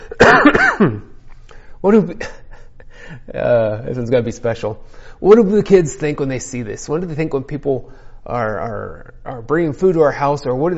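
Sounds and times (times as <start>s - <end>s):
person coughing: 0.0s - 1.2s
speech: 0.2s - 1.1s, 1.8s - 2.4s, 3.2s - 10.7s.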